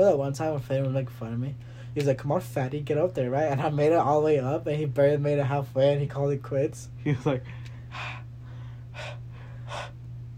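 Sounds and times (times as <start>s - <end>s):
speech: 0.0s - 8.2s
steady low hum: 0.0s - 10.3s
laughter: 7.0s - 7.5s
person imitating heavy deep breathing after climbing up a hill: 7.5s - 10.0s.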